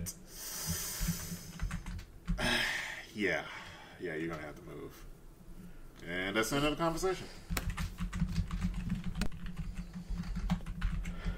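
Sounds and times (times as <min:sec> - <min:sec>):
speech: 0:00.0 - 0:00.8, 0:02.4 - 0:05.1, 0:06.0 - 0:07.4
typing on a clicky mechanical keyboard: 0:01.1 - 0:02.4, 0:07.5 - 0:11.3.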